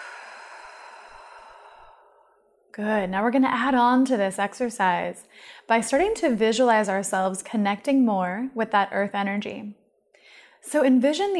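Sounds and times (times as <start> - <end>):
slow deep breath out during a guided breathing exercise: 0.0 - 2.5, 5.3 - 5.7, 10.2 - 10.6
speech: 2.8 - 9.8, 10.6 - 11.3.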